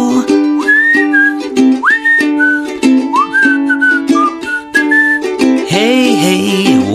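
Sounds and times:
person whistling a sliding melodic tune: 0.3 - 5.4
instrumental backing music with a rhythmic beat: 0.3 - 6.9.

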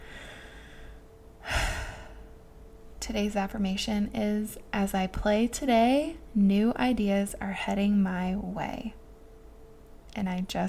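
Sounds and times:
deep breath in: 0.0 - 2.3
quiet noise: 0.0 - 10.6
speech: 3.0 - 9.0, 10.2 - 10.6.

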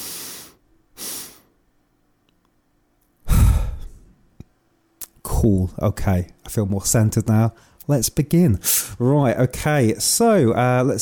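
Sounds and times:
long forceful exhale after breath hold in breathwork exercise: 0.0 - 1.5, 3.3 - 4.1
breathy intakes during a breathwork exercise: 3.2 - 4.1
speech: 5.4 - 10.9.

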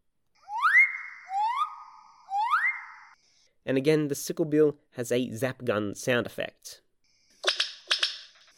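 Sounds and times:
riflebird whoop notes in mating display: 0.4 - 3.1
speech: 3.7 - 6.8.

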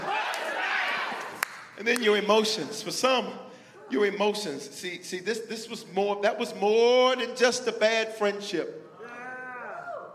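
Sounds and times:
audience shouting in response: 0.0 - 1.2
speech: 1.8 - 8.8.

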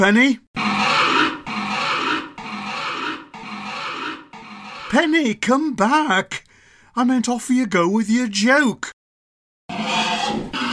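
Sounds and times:
speech: 0.0 - 0.7, 4.9 - 6.4, 7.0 - 8.9
pig squealing: 0.6 - 5.1, 9.7 - 10.7.

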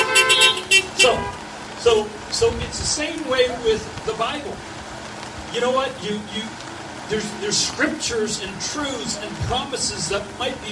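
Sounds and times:
car horns honking: 0.0 - 1.6
speech: 1.0 - 4.8, 5.5 - 10.6.

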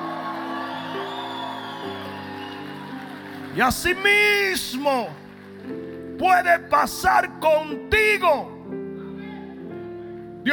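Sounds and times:
audience shouting and cheering praise to God: 0.0 - 5.3
speech: 3.6 - 5.2, 6.2 - 8.5.

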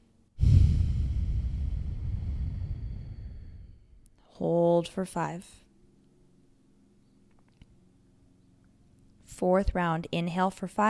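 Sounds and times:
slow breath exhaled during a guided breathing exercise: 0.4 - 4.0
speech: 4.4 - 5.6, 9.4 - 10.8.

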